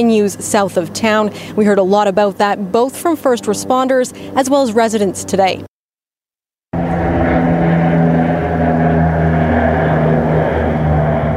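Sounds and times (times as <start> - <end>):
firefighting aircraft engine drone laying a retardant line over a wildfire: 0.0 - 5.7, 6.7 - 11.3
speech: 0.0 - 5.7.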